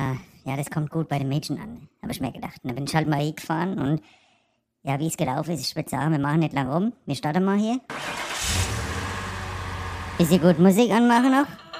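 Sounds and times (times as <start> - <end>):
speech: 0.2 - 4.2, 4.8 - 8.7, 10.2 - 11.6
car engine cranking and catching then rumbling: 7.9 - 11.0.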